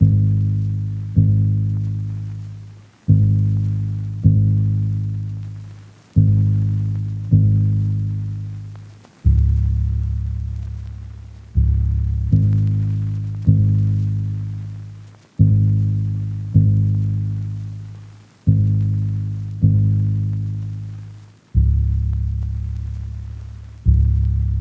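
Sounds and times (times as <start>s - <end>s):
lofi bass melody loop in G sharp minor: 0.0s - 24.5s.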